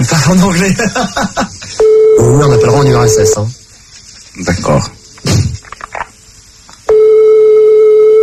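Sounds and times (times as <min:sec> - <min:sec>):
speech: 0:00.3 - 0:03.6, 0:04.4 - 0:05.0
laughter: 0:00.6 - 0:01.8
telephone ringing tone on an international call to the United States: 0:01.8 - 0:03.4, 0:06.9 - 0:08.2.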